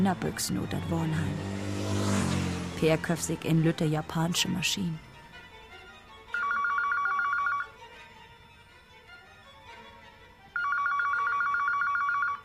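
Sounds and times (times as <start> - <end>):
speech: 0.0 - 5.1
telephone ringing loudly: 6.3 - 7.8, 10.6 - 12.4.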